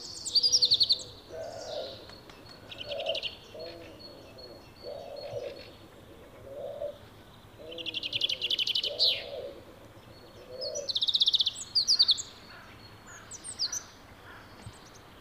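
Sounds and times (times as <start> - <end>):
wild common chaffinch singing in pre-breeding season: 0.0 - 15.1
low cooing sound: 0.5 - 11.0.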